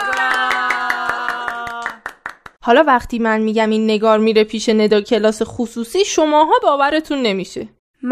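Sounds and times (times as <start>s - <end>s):
tuneful cheering voice: 0.0s - 2.1s
rhythmic hand claps: 0.0s - 2.6s
speech: 2.6s - 8.1s.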